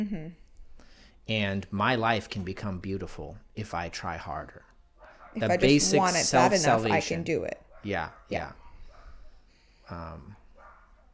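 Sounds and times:
speech: 0.0 - 0.4, 1.3 - 4.7, 5.3 - 8.6, 9.9 - 10.4
neighbors' dog barking at a distance: 5.0 - 5.5, 7.7 - 9.5, 10.5 - 11.1.

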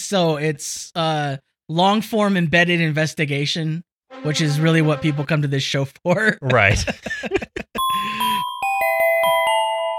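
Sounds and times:
speech: 0.1 - 7.4
laughter: 6.4 - 8.2
chime sound effect: 7.8 - 9.9.

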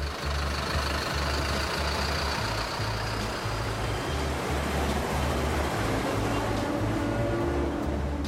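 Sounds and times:
heavy bus engine idling: 0.0 - 7.0
city traffic noise in João Pessoa: 0.0 - 8.2.

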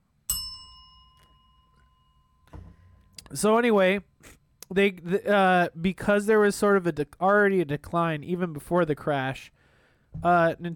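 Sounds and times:
bell struck with a sharp metallic clang: 0.3 - 3.2
speech: 3.3 - 10.7.

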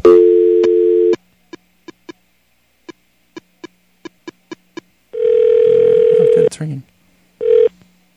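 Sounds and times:
old telephone dial tone: 0.0 - 1.2, 5.2 - 6.5, 7.4 - 7.7.

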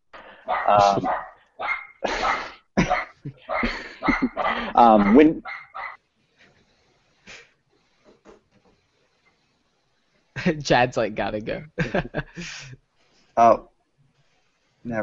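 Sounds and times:
dog barking: 0.4 - 6.0
laughter: 0.7 - 1.1, 2.0 - 5.4, 11.8 - 12.8
speech: 0.7 - 1.3, 3.2 - 5.5, 10.4 - 12.8, 13.4 - 13.7, 14.8 - 15.0.

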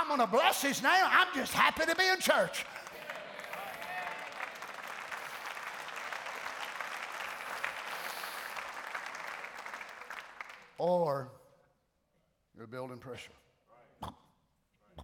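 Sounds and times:
speech: 0.2 - 2.8, 10.8 - 11.4, 12.6 - 13.4
audience clapping hands: 1.3 - 10.8.

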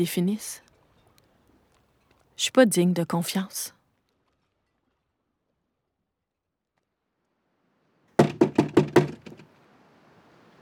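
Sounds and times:
speech: 0.0 - 0.6, 2.4 - 3.8
firm knocks on a cabin door: 8.2 - 9.4.

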